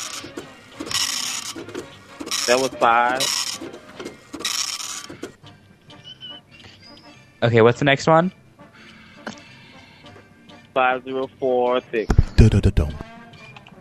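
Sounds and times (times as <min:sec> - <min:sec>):
dot matrix printer printing: 0:00.0 - 0:05.4
speech: 0:02.5 - 0:03.4, 0:07.4 - 0:08.4, 0:10.8 - 0:13.1.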